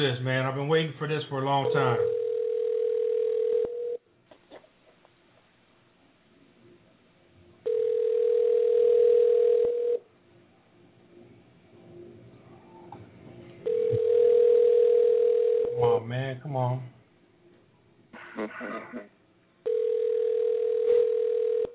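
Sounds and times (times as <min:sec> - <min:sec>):
speech: 0:00.0 - 0:02.2
telephone ringing tone during an outgoing phone call: 0:01.6 - 0:04.0, 0:07.6 - 0:10.0, 0:13.6 - 0:15.8, 0:19.6 - 0:21.7.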